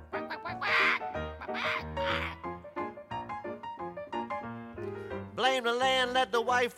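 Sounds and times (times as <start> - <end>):
person imitating a squawking hen: 0.2 - 2.5
speech: 5.4 - 6.7.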